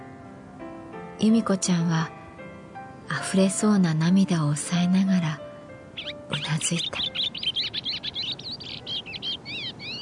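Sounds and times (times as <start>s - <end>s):
speech: 1.2s - 2.2s, 3.1s - 5.4s, 6.3s - 7.2s
bird chirping: 5.9s - 9.9s.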